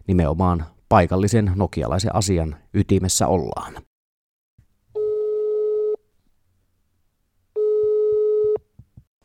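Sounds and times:
speech: 0.1s - 3.9s
buzzing ringback tones over a phone line during an outgoing call: 5.0s - 6.0s, 7.6s - 8.6s
soft clicks and thumps: 8.6s - 9.1s.

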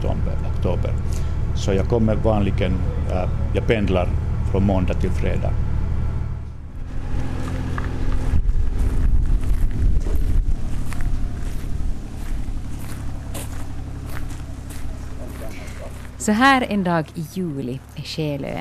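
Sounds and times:
tractor engine droning: 0.0s - 18.5s
speech: 0.6s - 5.7s, 16.2s - 18.5s
wind buffeting the microphone: 6.8s - 13.8s.

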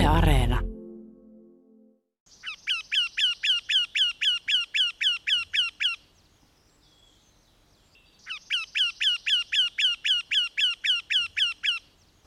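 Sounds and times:
speech: 0.1s - 0.7s
Eurasian wryneck calling: 2.3s - 6.2s, 7.9s - 12.0s.

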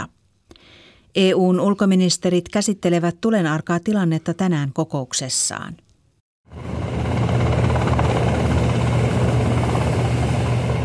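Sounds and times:
speech: 1.1s - 5.9s
helicopters droning overhead: 6.5s - 10.8s.

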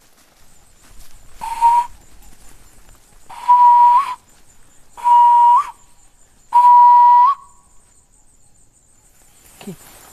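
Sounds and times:
faint insect hum: 0.0s - 10.1s
guides' and rangers' signal whistles in bush while tracking rhinos: 1.4s - 2.1s, 3.3s - 4.2s, 5.0s - 5.9s, 6.5s - 7.7s.

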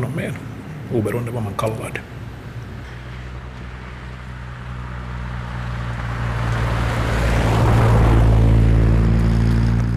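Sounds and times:
speech: 0.0s - 2.2s
rushing wind and road noise of car at high speed: 0.0s - 9.9s
car engine droning at high speed: 2.1s - 9.9s.

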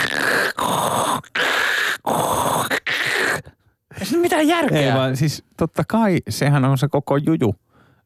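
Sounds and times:
voice imitating heavy mechanical respirator breathing through a helmet: 0.0s - 3.7s
speech: 4.3s - 7.7s.

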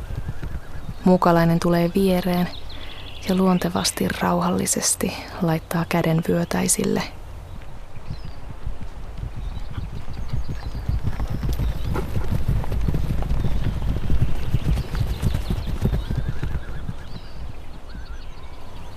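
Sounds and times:
horses whinnying and neighing in an adjacent pasture: 0.0s - 1.0s, 15.7s - 17.2s
horse hooves clip-clopping across the ground: 0.0s - 2.6s, 7.6s - 18.1s
faint breeze: 0.0s - 18.9s
speech: 1.0s - 2.6s, 3.2s - 7.2s.

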